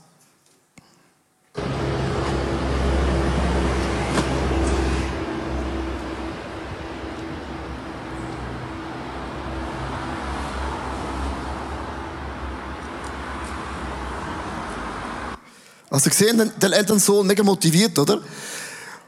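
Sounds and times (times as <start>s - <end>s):
city street traffic on a downtown street in Zurich Switzerland: 1.6s - 15.4s
louder low engine drone: 1.6s - 15.4s
speech: 16.0s - 18.6s.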